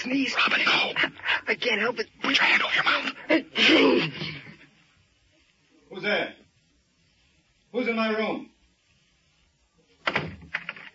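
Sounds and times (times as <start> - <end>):
speech: 0.0 - 4.2, 6.0 - 6.4, 7.7 - 8.5
door being shut: 10.0 - 10.9.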